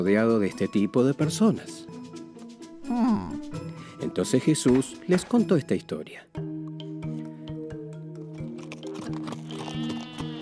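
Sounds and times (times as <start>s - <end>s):
speech: 0.0s - 2.0s, 2.9s - 6.4s
faint tapping hoofbeats: 8.8s - 10.4s
sheep bleating: 9.4s - 10.4s.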